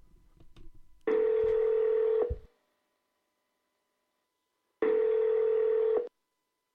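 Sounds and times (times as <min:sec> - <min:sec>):
telephone with loud electronic rings: 0:01.1 - 0:02.5, 0:04.8 - 0:06.1.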